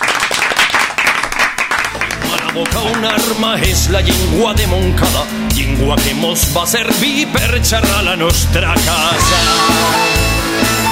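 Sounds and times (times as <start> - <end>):
crowd applause at the close of an election-day special: 0.0 - 4.1, 8.9 - 10.9
speech: 2.6 - 10.3.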